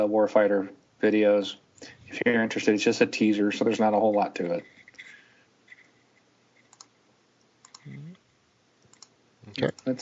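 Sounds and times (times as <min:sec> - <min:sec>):
speech: 0:00.0 - 0:04.7, 0:09.6 - 0:10.0
soft sharp computer mouse clicks: 0:06.6 - 0:06.9, 0:07.6 - 0:07.9, 0:08.8 - 0:09.2.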